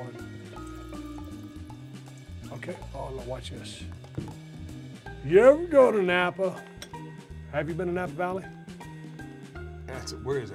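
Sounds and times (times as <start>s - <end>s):
wine pouring into a glass: 0.0s - 3.2s
speech: 2.6s - 4.4s, 5.2s - 6.7s, 7.5s - 8.6s, 10.0s - 10.5s.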